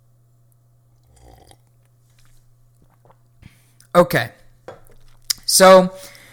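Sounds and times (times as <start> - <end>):
soft swallow: 1.0 - 1.8
quiet slurping sip of coffee: 1.0 - 3.2
speech: 4.0 - 4.4, 5.6 - 6.2.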